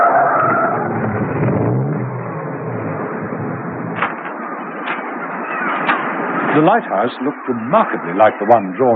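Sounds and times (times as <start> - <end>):
car engine rumbling while driving up a road: 0.0 - 6.9
speech: 6.6 - 8.9.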